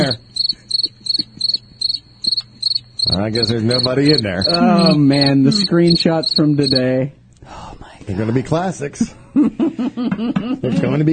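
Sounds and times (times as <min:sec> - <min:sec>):
crickets chirping: 0:00.0 - 0:07.0
faint low hum: 0:00.0 - 0:11.1
speech: 0:03.1 - 0:11.1
laughter: 0:04.4 - 0:05.9, 0:08.3 - 0:11.1.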